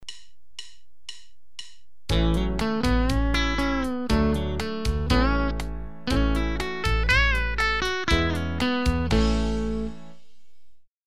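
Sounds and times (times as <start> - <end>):
southern-rock lead guitar lick in A: 2.1 - 10.3.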